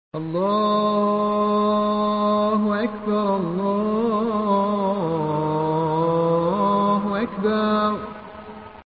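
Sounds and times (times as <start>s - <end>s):
azan call to prayer: 0.2s - 8.7s.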